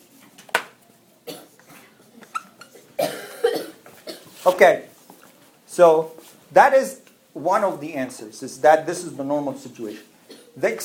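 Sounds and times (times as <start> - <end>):
person coughing: 1.3 - 1.9, 2.7 - 4.4, 10.3 - 10.6
speech: 4.4 - 4.9, 5.8 - 10.8.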